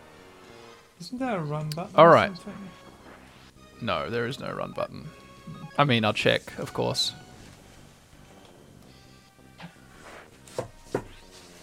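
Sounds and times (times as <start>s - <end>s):
speech: 1.0s - 2.8s, 3.8s - 7.2s
book sliding onto a shelf: 9.9s - 11.6s
hollow wooden knocks of books on a shelf: 10.5s - 11.1s.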